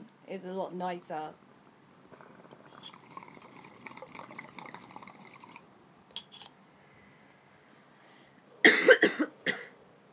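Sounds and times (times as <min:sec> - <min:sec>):
speech: 0:00.3 - 0:01.4
soft water bubbling and gurgling in a bong: 0:01.6 - 0:05.7
harsh hacking coughing after a bong hit: 0:08.6 - 0:09.7.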